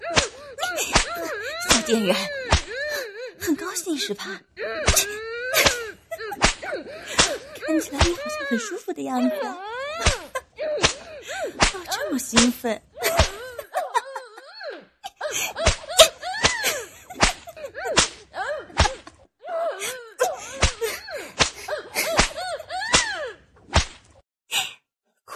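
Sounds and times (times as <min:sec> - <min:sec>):
laughter: 0:00.0 - 0:03.1, 0:04.7 - 0:18.0, 0:20.2 - 0:23.2
person moaning and gasping: 0:00.0 - 0:12.2, 0:12.9 - 0:18.8, 0:19.4 - 0:23.4
whip lashes striking a person: 0:00.1 - 0:02.8, 0:04.9 - 0:05.8, 0:06.4 - 0:08.3, 0:10.0 - 0:13.4, 0:15.6 - 0:19.2, 0:20.5 - 0:24.2
speech: 0:01.9 - 0:02.4, 0:03.9 - 0:05.7, 0:06.7 - 0:10.3, 0:11.4 - 0:13.2.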